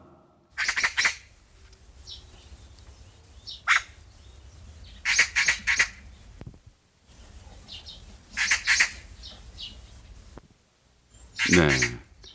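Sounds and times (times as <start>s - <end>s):
faint outdoor background: 0.0s - 12.3s
magpie chattering in harsh rattling calls: 0.6s - 1.3s, 3.3s - 6.2s, 7.6s - 10.0s, 11.2s - 12.3s
speech: 11.5s - 12.0s.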